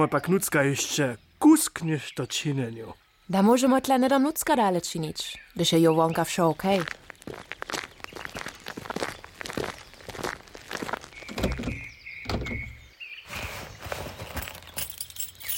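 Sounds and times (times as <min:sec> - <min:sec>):
speech: 0:00.0 - 0:07.8
door creaking open on a squeaky hinge: 0:11.2 - 0:12.9
key unlocking a lock with metallic clicks and rattles: 0:14.4 - 0:15.5.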